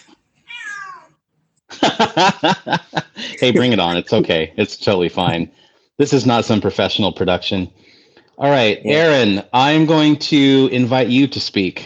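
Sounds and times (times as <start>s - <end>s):
cat meowing: 0.0s - 1.2s
laughter: 1.7s - 5.5s
speech: 2.0s - 11.8s.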